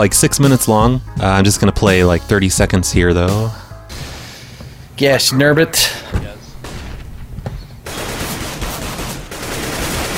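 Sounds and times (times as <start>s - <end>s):
speech: 0.0s - 3.6s, 5.0s - 6.2s
rapid video game gunfire in dense bursts: 7.8s - 10.1s.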